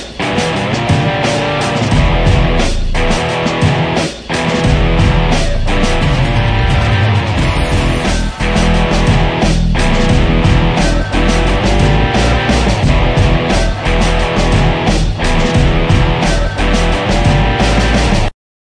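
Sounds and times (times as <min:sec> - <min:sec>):
smooth lead tones: 0:00.2 - 0:03.8, 0:04.6 - 0:18.3.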